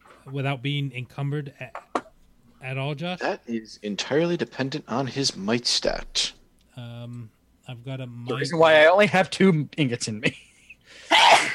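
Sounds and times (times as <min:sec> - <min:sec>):
speech: 0:00.2 - 0:01.8, 0:02.6 - 0:11.2
person sneezing: 0:11.0 - 0:11.5.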